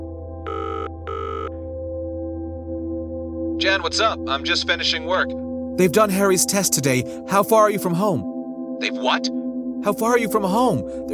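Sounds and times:
phone ringing tone: 0.5s - 1.5s
speech: 3.6s - 11.1s.

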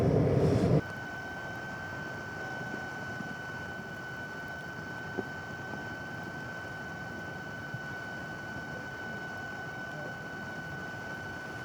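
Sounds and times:
gas hissing from a tiny fumarole at the summit of La Soufrière in Guadeloupe: 0.0s - 0.8s.

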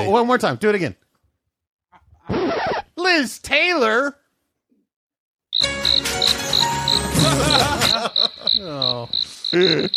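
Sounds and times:
speech: 0.1s - 1.0s, 3.0s - 4.2s, 7.2s - 9.9s
crickets chirping: 5.6s - 7.1s, 7.9s - 9.9s
laughter: 7.0s - 9.9s.

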